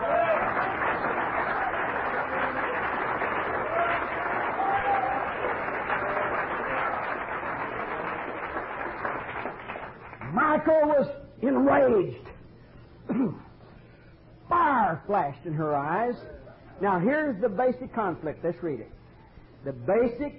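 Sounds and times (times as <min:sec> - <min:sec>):
audience clapping hands: 0:00.0 - 0:10.4
speech: 0:11.0 - 0:12.2, 0:15.1 - 0:19.0, 0:19.6 - 0:20.3.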